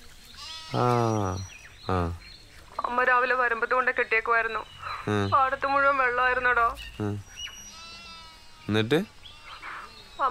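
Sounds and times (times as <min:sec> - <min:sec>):
household goat kid bleating: 0:00.4 - 0:01.3, 0:07.7 - 0:10.3
speech: 0:00.7 - 0:07.4, 0:08.7 - 0:09.2, 0:10.2 - 0:10.3.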